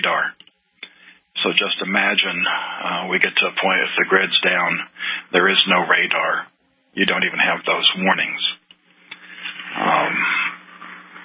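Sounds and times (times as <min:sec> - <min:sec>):
speech: 0:01.4 - 0:08.5
dog growling: 0:09.6 - 0:10.6.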